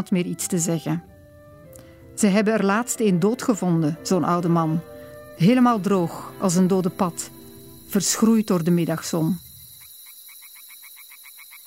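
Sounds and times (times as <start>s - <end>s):
speech: 0.0s - 1.2s, 2.2s - 9.4s
tree frogs croaking: 3.2s - 11.6s
high insect-like hiss: 3.7s - 11.6s.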